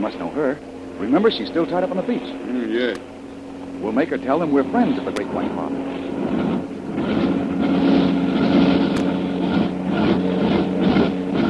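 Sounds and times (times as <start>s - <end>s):
speech: 0.0s - 3.2s, 3.8s - 6.1s
airplane engines droning overhead: 0.0s - 11.4s.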